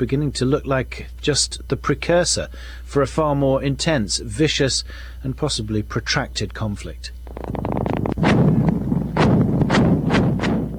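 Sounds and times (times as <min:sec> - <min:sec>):
speech: 0:00.0 - 0:08.5
low continuous roar: 0:00.0 - 0:10.7
American missiles fired at a mosque complex in Fallujah: 0:07.9 - 0:10.7.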